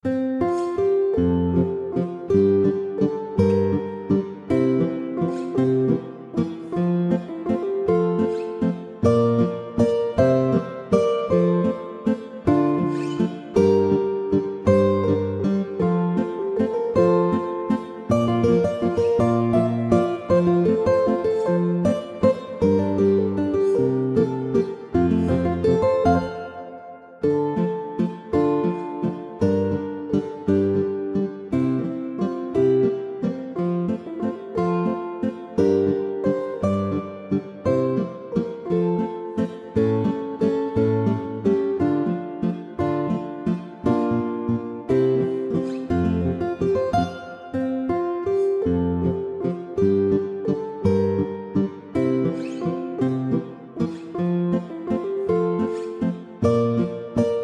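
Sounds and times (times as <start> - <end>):
two guitars playing: 0.0 - 57.4.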